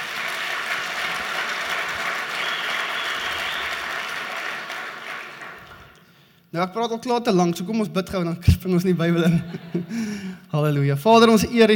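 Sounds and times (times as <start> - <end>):
crowd applauding: 0.0 - 6.0
speech: 6.5 - 11.7
laughter: 9.2 - 10.2.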